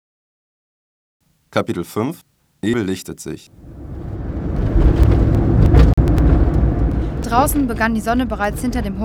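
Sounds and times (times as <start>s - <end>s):
speech: 1.5s - 3.8s, 7.3s - 9.0s
road noise: 1.6s - 8.8s
car engine rumble heard from inside: 2.6s - 9.0s.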